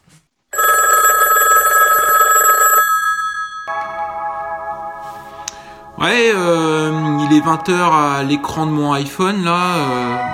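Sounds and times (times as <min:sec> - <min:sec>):
answering machine tone: 0:00.6 - 0:04.1
telephone ringing: 0:00.6 - 0:04.2
speech: 0:06.0 - 0:06.6, 0:07.3 - 0:10.3.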